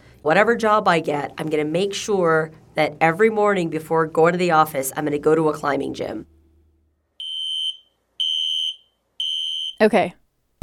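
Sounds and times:
speech: 0.2s - 6.3s, 9.8s - 10.6s
fire alarm beeping: 7.2s - 9.8s.

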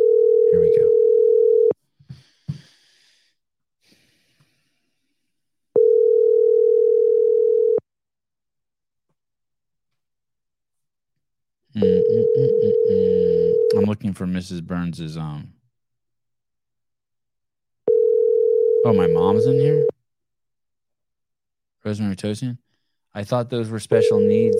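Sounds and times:
phone line ringback tone while calling a number: 0.0s - 1.8s, 5.8s - 7.8s, 11.8s - 13.8s, 17.9s - 19.9s, 24.0s - 24.5s
speech: 14.2s - 15.6s, 18.8s - 19.9s, 21.8s - 24.5s.

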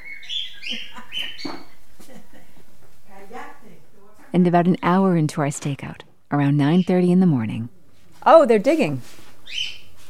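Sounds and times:
pet bird chattering indoors: 0.0s - 1.8s, 9.5s - 9.9s
speech: 4.3s - 9.7s.

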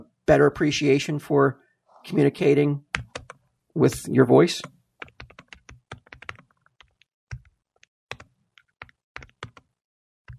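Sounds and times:
speech: 0.3s - 3.1s, 3.8s - 4.8s
rapid typing on a computer keyboard: 3.0s - 3.4s, 5.0s - 9.7s.

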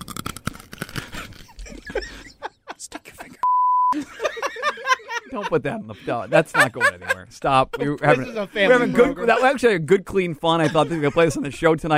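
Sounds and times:
crunchy food seasoned with nutmeg and thyme being bitten and chewed: 0.0s - 1.8s
laughter: 1.2s - 9.8s, 10.4s - 11.9s
speech: 5.4s - 11.9s.

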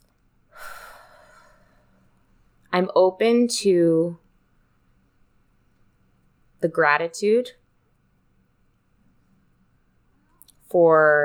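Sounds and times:
deep breath in: 0.5s - 2.1s
speech: 2.8s - 4.2s, 6.6s - 7.6s, 10.7s - 11.2s.

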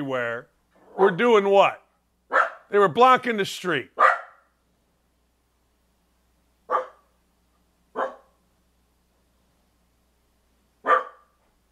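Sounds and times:
speech: 0.0s - 4.0s
dog barking: 2.3s - 2.7s, 4.0s - 4.6s, 6.7s - 7.2s, 7.9s - 8.4s, 10.8s - 11.4s.

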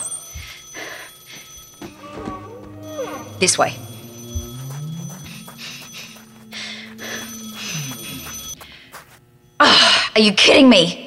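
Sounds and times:
telephone ringing: 0.0s - 8.6s
layered tones: 0.2s - 9.2s
speech: 3.4s - 3.9s, 10.2s - 11.0s.

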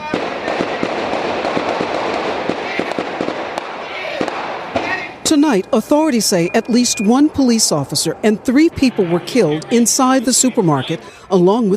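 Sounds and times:
rapid gunfire during a police shootout at a supermarket: 0.0s - 5.1s
dense wash of noise: 0.0s - 11.7s
speech: 5.3s - 11.7s.

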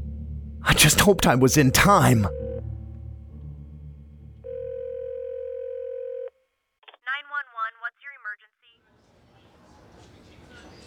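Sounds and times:
speech: 0.7s - 2.4s
low rumbling on a telephone line: 1.8s - 6.2s
loud steady electronic telephone ringing tone: 2.3s - 2.6s, 4.5s - 6.3s.

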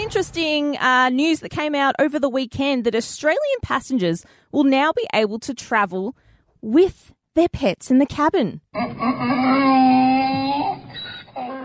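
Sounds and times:
speech: 0.1s - 11.6s
donkey braying: 8.7s - 11.6s.

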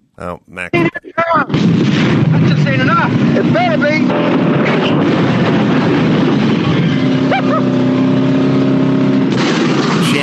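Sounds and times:
speech: 0.2s - 6.0s
rocket car engine roaring as fired off a broken bridge: 1.5s - 10.2s.

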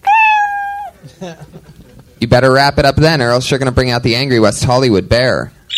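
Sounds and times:
cat meowing: 0.0s - 0.9s
speech: 1.0s - 5.6s.

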